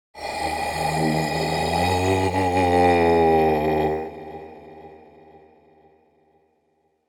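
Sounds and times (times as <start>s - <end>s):
male haunting ghostly groan: 0.2s - 5.6s.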